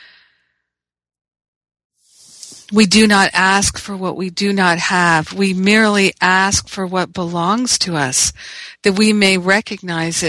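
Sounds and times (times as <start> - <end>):
deep breath during a guided gratitude meditation: 0.0 - 0.7
speech: 2.7 - 10.2.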